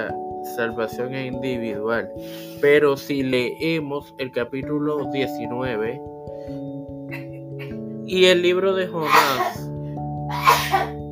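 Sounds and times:
speech: 0:00.0 - 0:07.2, 0:08.1 - 0:09.7
sneeze: 0:09.0 - 0:09.6, 0:10.3 - 0:10.9.

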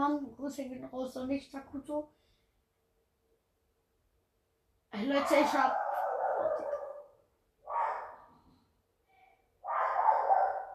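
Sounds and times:
speech: 0:00.0 - 0:02.2, 0:04.9 - 0:05.9
small dog barking: 0:05.2 - 0:08.3, 0:09.6 - 0:10.7.

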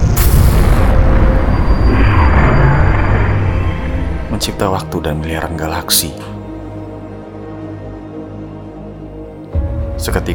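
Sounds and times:
loud booming explosion with heavy rumbling roar: 0:00.0 - 0:04.6
speech: 0:04.5 - 0:06.3, 0:10.0 - 0:10.3.

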